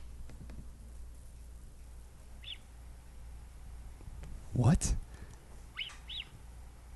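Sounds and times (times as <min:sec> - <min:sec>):
low steady rumble: 0:00.0 - 0:06.9
mountain lion giving faint high whistling chirps: 0:02.4 - 0:02.7, 0:05.7 - 0:06.4
speech: 0:04.6 - 0:05.0.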